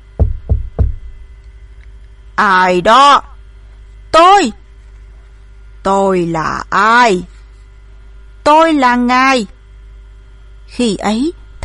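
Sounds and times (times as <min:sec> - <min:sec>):
loud hollow knocks on a door: 0:00.2 - 0:01.1
speech: 0:02.4 - 0:03.3, 0:04.1 - 0:04.6, 0:05.8 - 0:07.4, 0:08.5 - 0:09.6, 0:10.7 - 0:11.6.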